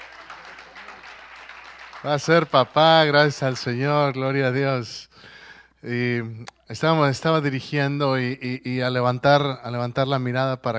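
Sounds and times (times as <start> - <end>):
church audience applauding: 0.0 - 3.9
speech: 2.0 - 10.7.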